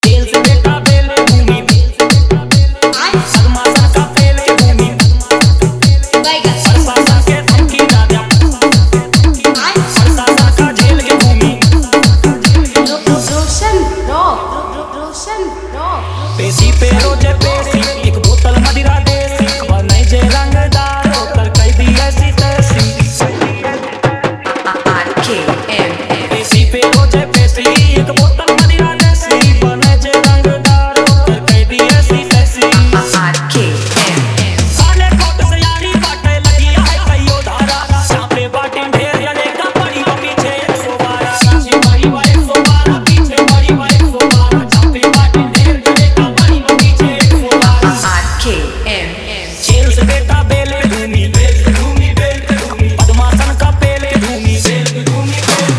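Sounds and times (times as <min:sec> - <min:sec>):
Bhojpuri dance music mix: 0:00.0 - 0:55.7.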